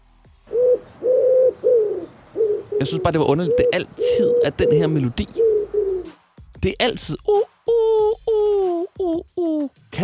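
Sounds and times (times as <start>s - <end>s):
dove cooing in soft low hooting phrases: 0.5s - 6.1s, 7.3s - 9.7s
speech: 2.8s - 5.4s, 6.6s - 7.4s.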